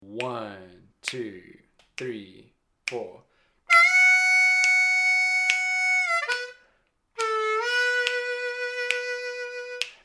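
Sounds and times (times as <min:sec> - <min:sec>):
harmonica lick: 0:03.7 - 0:10.0.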